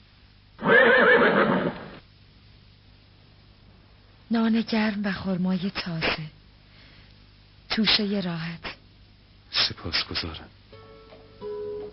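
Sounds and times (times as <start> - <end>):
saddled horse neighing: 0.6 - 2.0
speech: 4.3 - 6.4, 7.8 - 8.7, 9.5 - 10.6.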